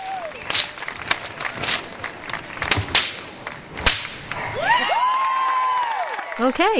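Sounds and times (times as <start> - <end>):
audience whistles and cheers: 0.0 - 1.0, 4.5 - 6.4
festival crowd clapping: 0.0 - 6.7
flaming whip cracking: 0.4 - 4.5
speech: 6.4 - 6.7.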